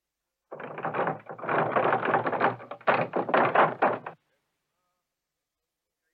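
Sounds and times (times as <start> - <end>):
rapid insistent knocking on a door: 0.5 - 4.2.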